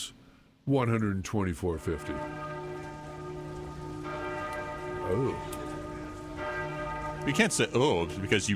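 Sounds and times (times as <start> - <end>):
speech: 0.0 - 2.4, 5.1 - 5.6, 7.2 - 8.5
soft steady hiss: 0.0 - 8.5
bells ringing: 1.8 - 8.5.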